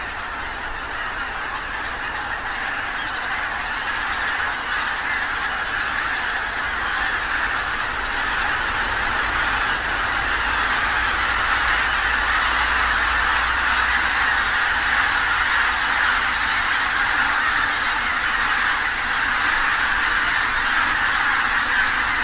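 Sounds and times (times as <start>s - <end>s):
geese: 0.0s - 22.2s.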